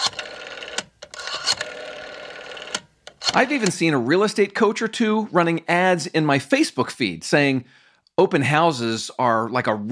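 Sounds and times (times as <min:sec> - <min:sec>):
rotary phone dial whirring and clicking: 0:00.0 - 0:03.7
speech: 0:03.4 - 0:09.8.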